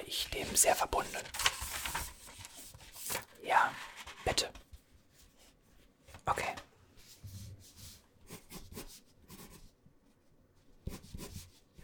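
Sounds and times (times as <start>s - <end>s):
speech: 0.1s - 2.1s, 3.4s - 4.6s, 6.3s - 6.6s
pen scratching on paper writing notes by hand: 7.3s - 9.7s, 10.8s - 11.8s.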